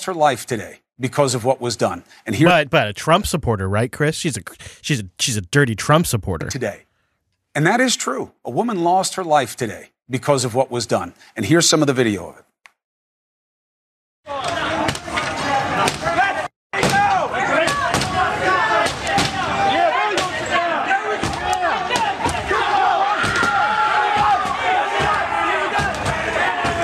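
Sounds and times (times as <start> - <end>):
speech: 0.0 - 6.9, 7.6 - 12.5
loud agitated crowd shouting: 14.3 - 26.8.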